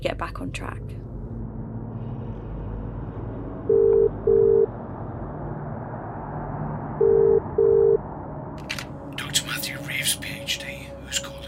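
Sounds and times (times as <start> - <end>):
speech: 0.0 - 1.2
steady low rumble: 0.0 - 11.4
phone line double-burst ringing tones after a number is dialled: 3.7 - 4.7, 7.0 - 8.0.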